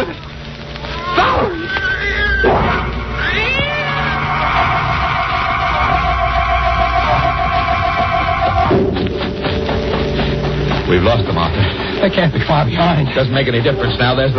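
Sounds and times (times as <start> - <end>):
steady noise: 0.0 - 14.3
cat yowling: 0.9 - 5.0
speech: 11.0 - 14.3.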